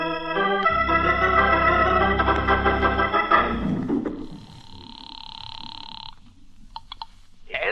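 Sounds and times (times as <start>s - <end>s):
loud buzzy rumbling tone: 0.7s - 6.7s
telephone ringing tone from a phone in a ceramic shop: 4.2s - 6.2s.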